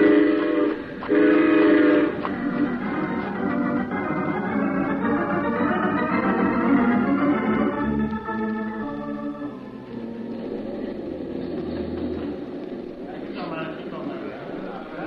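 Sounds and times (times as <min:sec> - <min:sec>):
train horn blasts: 0:00.0 - 0:02.7
train cars rumbling and clattering: 0:00.0 - 0:15.0.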